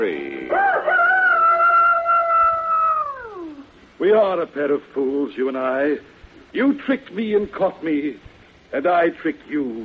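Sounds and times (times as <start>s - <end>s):
speech: 0.0s - 0.6s, 4.0s - 9.8s
rooster crowing: 0.5s - 3.6s.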